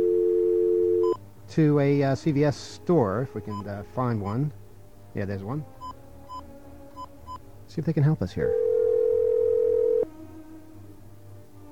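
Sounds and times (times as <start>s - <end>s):
regular telephone dial tone: 0.0s - 1.2s, 8.5s - 10.1s
speech: 1.5s - 4.6s, 5.2s - 5.8s, 7.7s - 8.6s.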